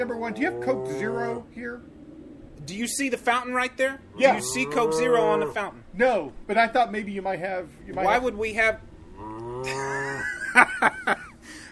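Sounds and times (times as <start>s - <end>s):
cows mooing and bellowing: 0.0s - 1.5s, 4.0s - 5.7s, 9.0s - 10.3s
speech: 0.0s - 2.0s, 2.6s - 10.0s, 10.6s - 10.9s
laughter: 9.7s - 11.4s.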